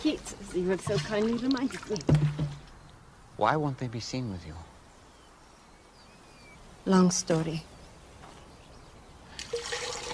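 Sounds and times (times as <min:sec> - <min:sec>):
speech: 0:00.0 - 0:02.4, 0:03.4 - 0:04.7, 0:06.9 - 0:07.7
water splashing as it is drawn from a well: 0:00.5 - 0:02.9, 0:09.3 - 0:10.1.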